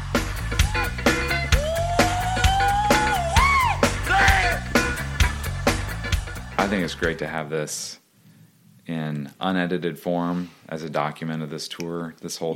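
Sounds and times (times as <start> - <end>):
loud live band with drums and bass: 0.0 - 6.4
singer screaming in a live concert: 0.6 - 4.7
speech: 6.7 - 8.0, 8.9 - 12.5.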